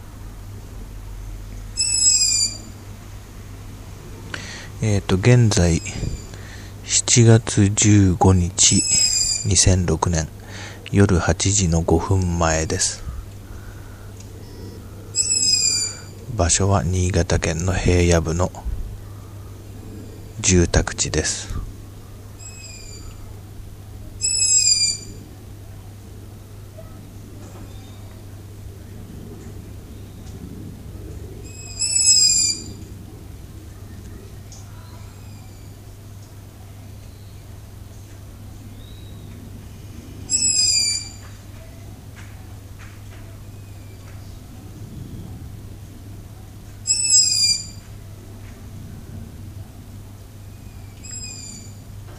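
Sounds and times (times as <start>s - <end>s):
steady low hum: 0.0s - 52.1s
owl calling at night in a residential area on the Niigata plains: 1.7s - 2.9s, 5.5s - 6.8s, 8.6s - 9.7s, 12.7s - 16.4s, 21.9s - 25.4s, 31.2s - 33.0s, 33.6s - 36.0s, 38.6s - 41.8s, 46.8s - 48.0s, 50.5s - 51.9s
speech: 4.8s - 6.2s, 6.9s - 13.0s, 16.4s - 18.7s, 20.4s - 21.7s.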